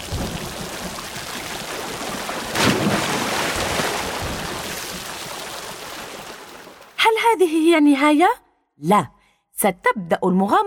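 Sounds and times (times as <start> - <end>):
heavy rain during a storm at sea: 0.0 - 6.3
speech: 7.4 - 10.6.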